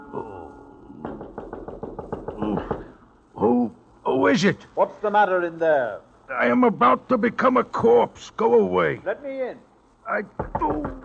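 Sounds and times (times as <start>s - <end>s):
person murmuring: 0.0s - 1.1s, 2.3s - 3.6s
speech: 0.1s - 0.4s, 4.3s - 11.0s
sharp knocks on a train door at night: 1.0s - 2.9s, 10.4s - 11.0s.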